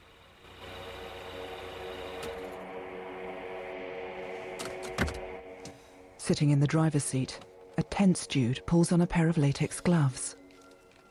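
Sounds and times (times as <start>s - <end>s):
car engine idling in a driveway at night: 0.0s - 6.1s
speech: 6.3s - 10.4s.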